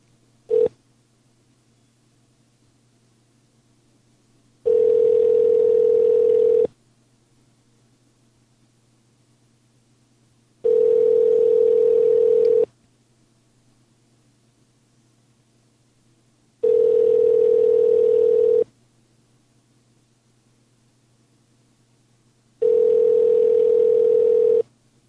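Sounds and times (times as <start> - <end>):
ringback tone of an outgoing phone call: 0.5 - 0.7, 4.7 - 6.7, 10.6 - 12.7, 16.6 - 18.7, 22.6 - 24.7.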